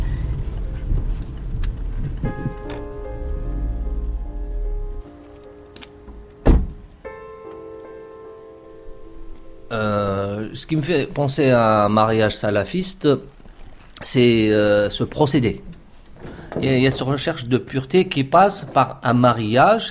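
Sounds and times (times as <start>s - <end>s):
car engine rumbling and idling while parking: 0.0s - 7.0s
car door shutting: 1.6s - 7.0s
speech: 10.5s - 13.3s, 14.0s - 15.8s, 16.6s - 19.8s.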